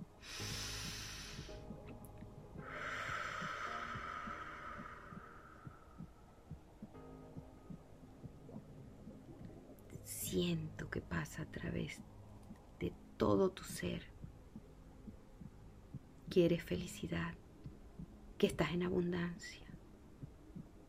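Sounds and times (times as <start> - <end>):
low steady pulsing rhythm: 0.0 - 20.8
deep breathing during a guided meditation: 0.2 - 1.8, 2.6 - 6.3
speech: 10.4 - 12.2, 12.8 - 14.1, 16.4 - 17.4, 18.4 - 19.7.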